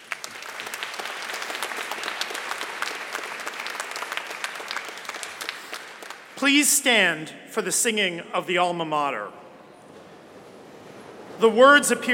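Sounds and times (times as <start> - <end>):
large audience applause: 0.0 - 6.4
speech: 6.4 - 9.4, 11.4 - 12.1.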